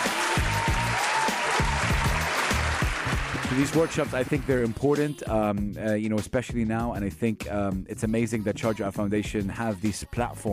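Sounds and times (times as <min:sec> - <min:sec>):
crowd applauding: 0:00.0 - 0:04.8
speech: 0:03.6 - 0:10.5.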